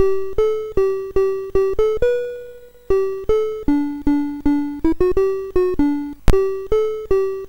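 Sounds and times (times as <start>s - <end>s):
Commodore MOS6581R2 sound chip BASIC example: 0.0s - 7.4s.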